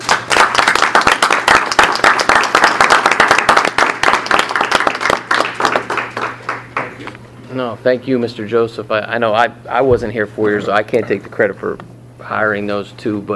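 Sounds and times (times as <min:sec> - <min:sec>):
audience applause: 0:00.0 - 0:07.0
speech: 0:07.6 - 0:13.3.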